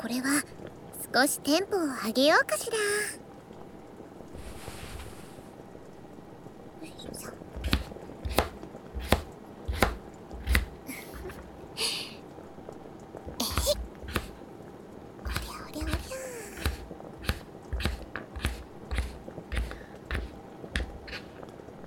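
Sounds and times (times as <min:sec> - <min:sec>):
speech: 0:00.0 - 0:03.2
knife chopping burdock root and daikon radish on a cutting board: 0:07.6 - 0:10.7, 0:13.6 - 0:14.4, 0:15.3 - 0:21.3.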